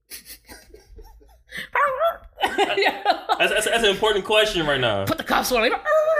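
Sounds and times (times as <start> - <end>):
dog yelping: 1.7 - 2.3, 5.7 - 6.1
laughter: 2.3 - 4.9
speech: 2.6 - 6.0.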